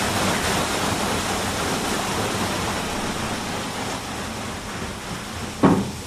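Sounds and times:
powerful rush of water through opened sluice gates: 0:00.0 - 0:06.0
brief knock: 0:05.6 - 0:06.0.

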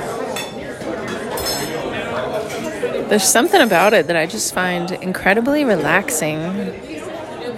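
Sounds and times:
plates, glasses and silverware clinking in a noisy dining atmosphere: 0:00.2 - 0:04.0
speech: 0:03.1 - 0:07.1.

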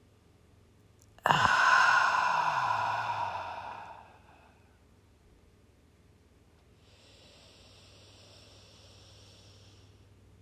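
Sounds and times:
slow deep breath out during a guided breathing exercise: 0:01.2 - 0:04.8, 0:06.8 - 0:10.0.

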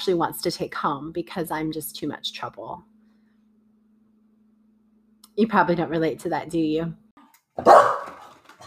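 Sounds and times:
speech: 0:00.0 - 0:02.9, 0:05.4 - 0:07.0, 0:07.6 - 0:08.0
dog barking: 0:07.6 - 0:08.3.

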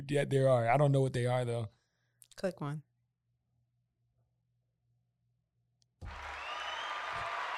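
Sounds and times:
speech: 0:00.1 - 0:01.8, 0:02.4 - 0:02.9
applause played from a sound pad: 0:06.0 - 0:07.5.

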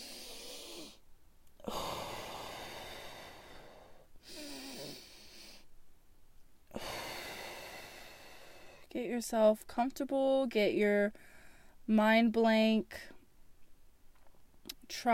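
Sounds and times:
slow deep breathing in through the nose and out through the mouth during meditation: 0:00.0 - 0:01.0, 0:01.6 - 0:05.7, 0:06.7 - 0:08.9, 0:11.2 - 0:11.8
speech: 0:08.9 - 0:11.3, 0:11.9 - 0:13.2, 0:14.9 - 0:15.1.

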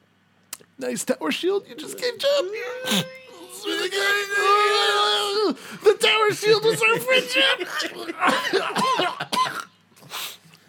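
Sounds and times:
speech: 0:00.8 - 0:09.2
laughter: 0:02.6 - 0:09.4
person with a two-week cough coughing harshly: 0:07.6 - 0:09.8.

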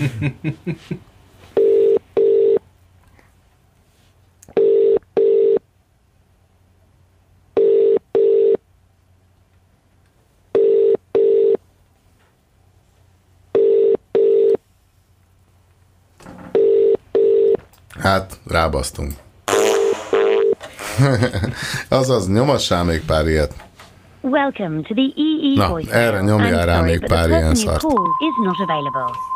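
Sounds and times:
laughter: 0:00.0 - 0:01.0, 0:20.8 - 0:21.9
speech: 0:00.0 - 0:01.1, 0:18.0 - 0:19.2, 0:21.0 - 0:29.3
telephone ringback tone double beeps: 0:01.6 - 0:02.6, 0:04.6 - 0:05.6, 0:07.6 - 0:08.6, 0:10.6 - 0:11.6, 0:13.6 - 0:14.6, 0:16.5 - 0:17.6, 0:20.2 - 0:20.6, 0:28.0 - 0:29.3.

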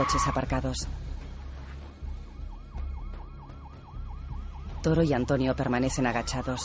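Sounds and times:
speech: 0:00.0 - 0:01.1, 0:04.8 - 0:06.6
passing police patrol car siren yelping: 0:02.4 - 0:04.9, 0:06.0 - 0:06.6.

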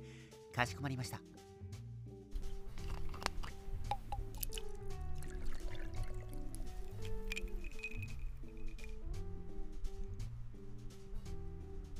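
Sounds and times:
mellow music: 0:00.0 - 0:11.9
speech: 0:00.6 - 0:01.4
Shigure awamori and water poured into a glass: 0:03.4 - 0:09.0.

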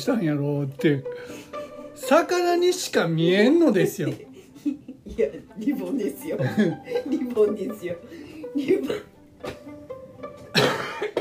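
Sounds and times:
speech: 0:00.0 - 0:09.7
laughter: 0:04.0 - 0:05.1, 0:06.4 - 0:07.5
person coughing and spluttering as if choking: 0:10.5 - 0:11.1.

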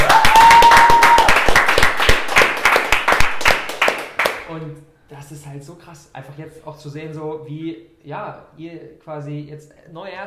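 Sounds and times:
crowd applause: 0:00.0 - 0:04.4
speech: 0:05.4 - 0:10.2.

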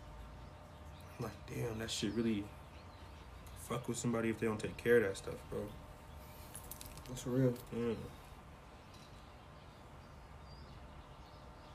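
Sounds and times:
birds chirping: 0:00.0 - 0:11.7
speech: 0:01.2 - 0:02.6, 0:03.7 - 0:05.8, 0:07.1 - 0:08.2.

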